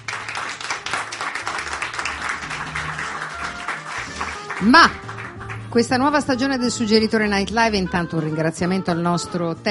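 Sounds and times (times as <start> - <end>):
crowd clapping: 0.0 - 6.1
speech: 4.6 - 5.0, 5.7 - 9.7.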